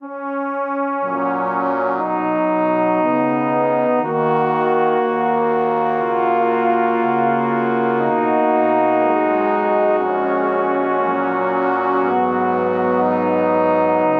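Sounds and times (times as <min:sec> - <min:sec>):
brass quartet playing a chord progression in G-flat major: 0:00.0 - 0:14.1.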